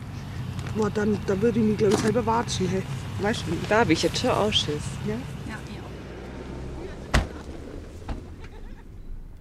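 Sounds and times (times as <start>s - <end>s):
car pulling up and idling: 0.0s - 9.3s
speech: 0.8s - 5.4s
sharp door-like slam: 7.0s - 8.4s.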